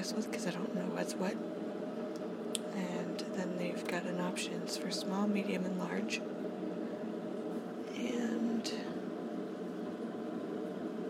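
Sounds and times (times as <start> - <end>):
microwave oven humming while warming water: 0.0 - 11.0
speech: 0.1 - 1.8, 2.8 - 6.6, 8.0 - 9.0.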